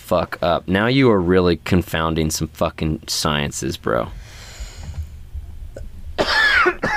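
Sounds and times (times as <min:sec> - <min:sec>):
speech: 0:00.1 - 0:04.3
loud harsh cough: 0:06.2 - 0:06.9.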